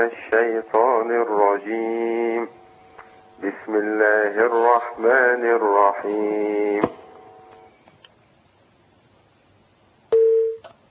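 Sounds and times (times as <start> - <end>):
speech: 0.0 - 2.6, 3.4 - 7.0
telephone tone after a call disconnects: 10.1 - 10.7.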